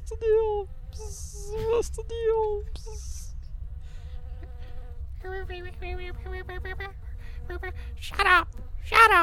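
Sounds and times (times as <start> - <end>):
bees buzzing in stuttering bursts: 0.0 - 9.2
faint hum: 0.0 - 9.2
low continuous rumble: 0.0 - 9.2
speech: 0.1 - 3.2, 5.2 - 9.2.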